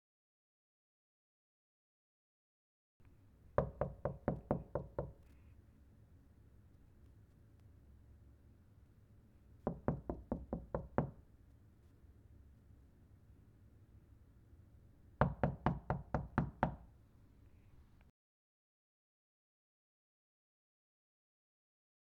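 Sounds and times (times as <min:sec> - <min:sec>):
knocking on wall impatiently: 0:03.6 - 0:05.2, 0:09.7 - 0:11.2, 0:15.2 - 0:16.9.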